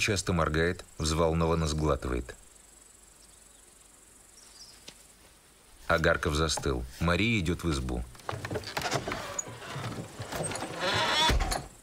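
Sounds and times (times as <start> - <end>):
speech: 0.0 - 2.4, 5.9 - 8.8
bay horse pulling a hay cart along a village road: 8.0 - 11.7.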